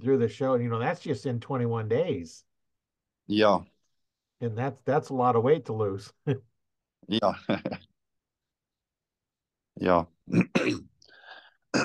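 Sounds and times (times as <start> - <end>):
speech: 0.0 - 2.5, 3.3 - 3.7, 4.4 - 7.9, 9.8 - 10.9
person clearing throat: 10.3 - 10.9.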